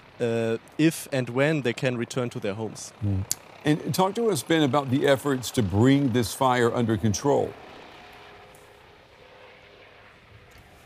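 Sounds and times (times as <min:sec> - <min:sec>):
firefighting helicopter flying overhead: 0:00.0 - 0:10.8
speech: 0:00.2 - 0:07.8.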